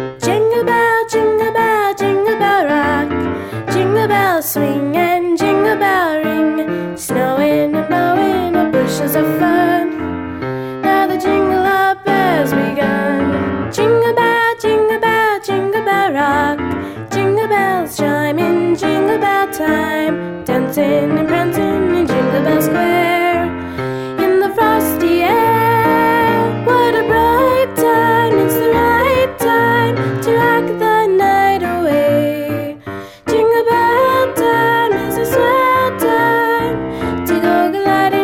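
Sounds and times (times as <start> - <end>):
person singing a Christmas pop song: 0.2 - 38.2.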